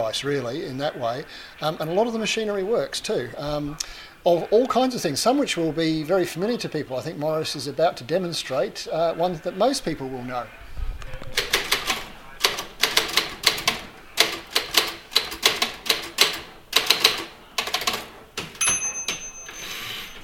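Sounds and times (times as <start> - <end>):
speech: 0.1 - 10.6
manual typewriter keystrokes on a desk in a shed: 11.4 - 19.3
manual typewriter rough carriage-return sweep: 11.4 - 20.2
manual typewriter bright ringing bell: 18.6 - 20.2.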